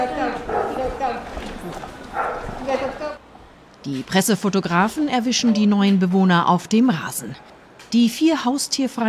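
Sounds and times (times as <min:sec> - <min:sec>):
two dogs barking: 0:00.2 - 0:03.0
speech: 0:03.9 - 0:09.0.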